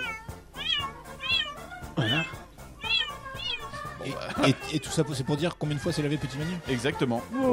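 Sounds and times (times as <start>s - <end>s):
nervous cat meowing plaintively: 0.0s - 3.8s
speech: 4.1s - 7.5s.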